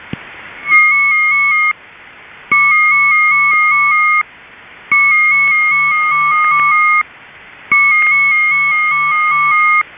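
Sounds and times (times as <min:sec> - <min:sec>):
Hagelin Cryptos HC-265 embedded tone call: 0:00.6 - 0:01.8, 0:02.5 - 0:04.2, 0:04.9 - 0:07.0, 0:07.7 - 0:09.8.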